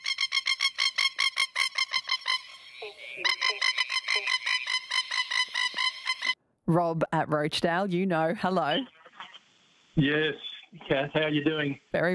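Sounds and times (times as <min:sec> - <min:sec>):
masked lapwing plover of Queensland calling in alarm: 0:00.0 - 0:06.4
speech: 0:06.7 - 0:09.0, 0:10.0 - 0:12.1.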